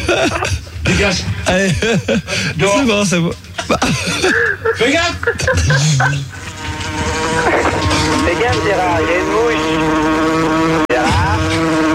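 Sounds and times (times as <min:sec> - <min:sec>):
laughter: 0:00.0 - 0:02.9, 0:03.6 - 0:09.0
speech: 0:00.2 - 0:06.4, 0:07.0 - 0:10.0
fly buzzing: 0:05.7 - 0:11.9.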